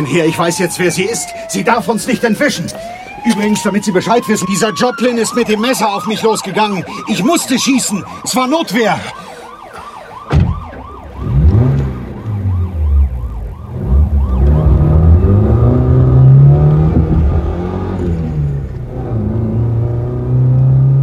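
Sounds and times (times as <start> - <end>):
speech: 0.0 - 9.4
wailing siren: 0.0 - 21.0
car accelerating hard on an open road: 11.0 - 21.0.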